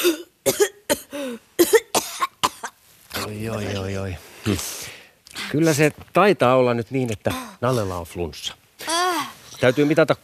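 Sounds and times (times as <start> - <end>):
person coughing on request during lung examination: 0.0 - 3.4
speech: 3.4 - 4.8, 5.5 - 8.6, 9.6 - 10.2.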